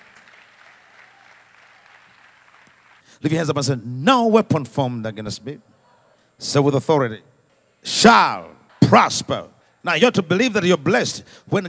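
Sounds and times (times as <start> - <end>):
congregation clapping hands: 0.0 - 3.2
speech: 3.2 - 5.7, 6.4 - 11.6.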